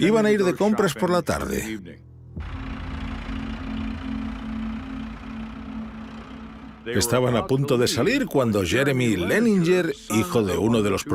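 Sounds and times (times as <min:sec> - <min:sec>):
speech: 0:00.0 - 0:02.0, 0:06.9 - 0:11.1
tractor engine idling: 0:02.4 - 0:08.8.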